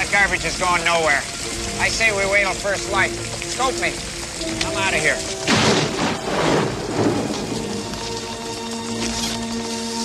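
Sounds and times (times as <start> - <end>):
heavy rain from a rainstorm at night: 0.0 - 10.0
speech: 0.2 - 5.8
deep thunder rumbling: 4.6 - 8.5.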